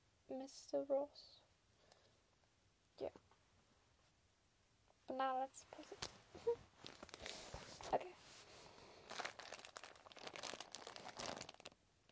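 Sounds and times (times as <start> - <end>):
speech: 0.3 - 1.4, 3.0 - 3.3, 5.1 - 6.7, 7.9 - 8.2
plastic packaging crinkling while being torn open: 6.8 - 8.0, 8.7 - 12.1.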